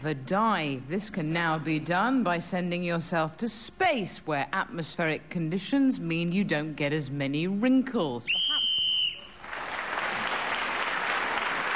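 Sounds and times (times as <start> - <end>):
speech: 0.0 - 8.4
whistle blast signalling end of a game round: 8.3 - 9.4
sustained applause from a large audience: 9.2 - 11.7.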